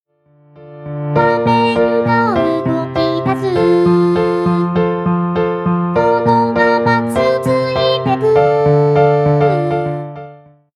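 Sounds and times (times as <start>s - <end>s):
song: 0.3s - 10.6s.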